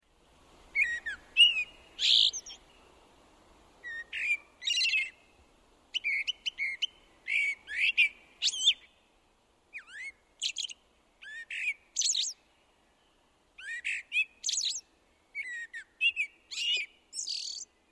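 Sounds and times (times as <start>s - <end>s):
blackbird: 0.8s - 2.9s, 3.8s - 5.3s, 5.9s - 9.0s, 9.7s - 12.4s, 13.6s - 17.8s.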